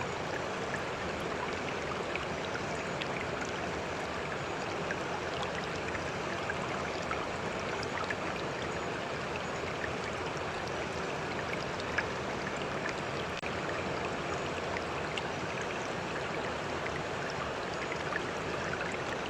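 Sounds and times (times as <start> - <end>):
rushing mountain river water: 0.0 - 19.2.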